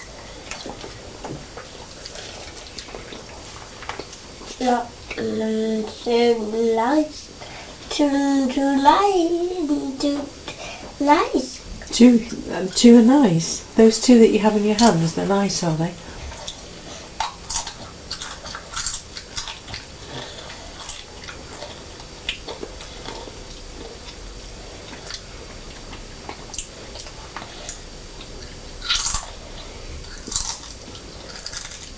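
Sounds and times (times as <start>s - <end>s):
person chewing crisps: 0.4s - 5.2s, 16.2s - 31.9s
speech: 4.6s - 7.2s, 8.0s - 10.4s, 11.0s - 16.0s.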